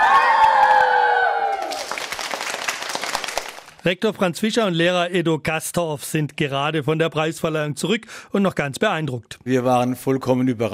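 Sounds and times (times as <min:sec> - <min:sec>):
children cheering and clapping in an echoing indoor hall: 0:00.0 - 0:03.8
speech: 0:03.8 - 0:10.7.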